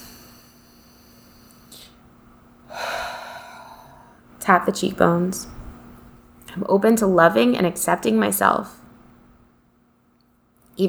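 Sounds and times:
long soft breathy inhalation during a calming tapping exercise: 0.0s - 2.0s, 2.7s - 4.3s
speech: 4.5s - 5.6s, 6.6s - 8.8s.

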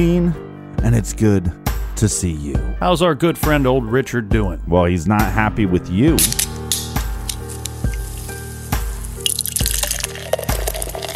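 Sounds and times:
speech: 0.0s - 6.5s
fizzy splash of red ale filling a glass: 7.8s - 11.1s
imperial double red ale glugging from a bottle: 9.2s - 11.1s.

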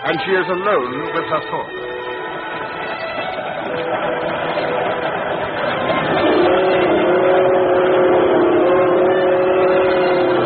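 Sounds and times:
speech: 0.0s - 1.8s
local train travelling late at night: 0.0s - 10.4s.

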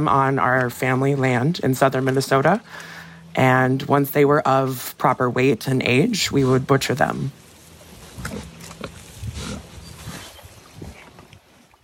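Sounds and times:
speech: 0.0s - 7.4s
pigs on a farm in southern Minnesota grunting and snorting: 6.2s - 11.4s.

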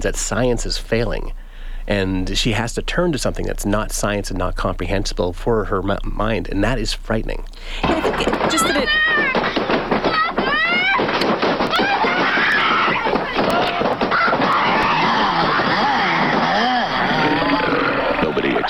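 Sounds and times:
speech: 0.0s - 9.4s
laughter: 7.8s - 18.6s
girl screaming in horror movie clip: 8.5s - 9.5s, 10.1s - 11.1s, 11.7s - 17.6s.

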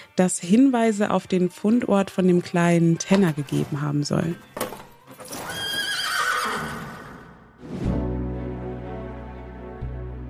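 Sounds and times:
speech: 0.2s - 4.5s
horse whinnying with a wavering neigh: 5.2s - 7.4s.

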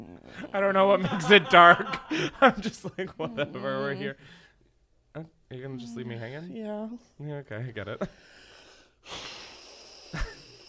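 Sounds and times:
speech: 0.2s - 4.4s, 5.2s - 8.4s, 9.0s - 9.3s
laughter: 0.7s - 4.2s
deep breath drawn in slowly: 2.0s - 2.4s, 4.1s - 4.8s, 8.1s - 10.6s.

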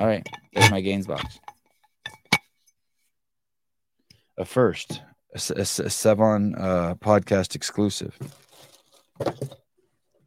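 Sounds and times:
speech: 0.0s - 1.5s, 4.4s - 8.4s, 9.2s - 9.6s
glass bottle with a rubber seal clinking while handled: 0.0s - 2.5s.

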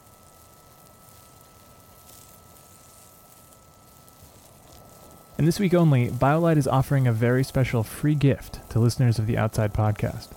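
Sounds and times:
hot dogs sizzling on a camp stove grill on a porch: 0.0s - 10.3s
speech: 5.4s - 10.3s.

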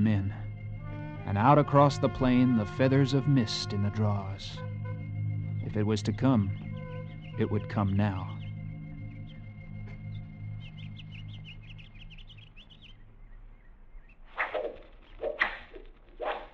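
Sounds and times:
faint birds chirping: 0.0s - 16.5s
speech: 1.3s - 4.7s, 5.7s - 6.6s, 7.4s - 8.4s
arrows whizzing through the air: 14.3s - 16.5s.

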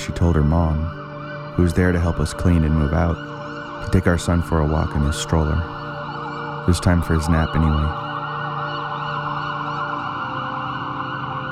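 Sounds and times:
speech: 0.0s - 1.0s, 1.6s - 5.8s, 6.6s - 8.0s
ambulance siren wailing during an ambulance ride: 0.0s - 11.4s.

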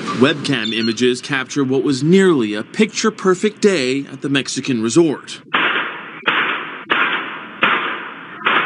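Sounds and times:
speech: 0.1s - 5.6s
gunshots with long noisy decay: 5.4s - 8.6s.

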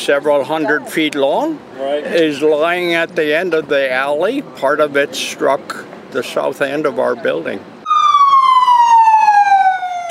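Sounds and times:
speech: 0.0s - 7.8s
faint rumble of traffic: 0.0s - 10.0s
ambulance siren wailing with long downward-sliding tone: 7.8s - 10.0s.

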